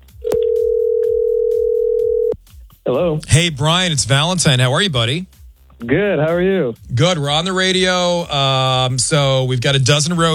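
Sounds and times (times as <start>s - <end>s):
telephone dial tone: 0.3s - 2.4s
speech: 2.9s - 10.3s.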